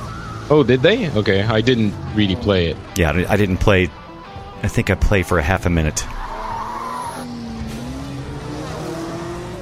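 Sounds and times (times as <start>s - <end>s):
speech: 0.5s - 4.0s, 4.6s - 6.3s
car tires skidding during a car race: 6.0s - 9.6s.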